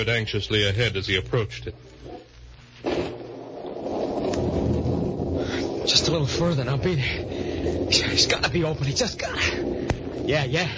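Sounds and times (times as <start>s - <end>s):
speech: 0.0s - 2.2s, 5.8s - 10.7s
brief low rumble: 2.3s - 10.7s
steady pouring rain: 3.1s - 10.7s.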